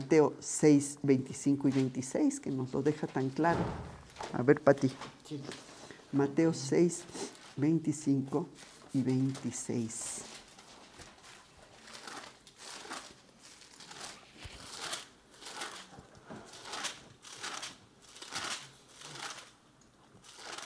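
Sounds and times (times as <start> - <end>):
speech: 0.1 - 10.3
thin Bible pages being flipped: 8.6 - 19.6, 20.2 - 20.6.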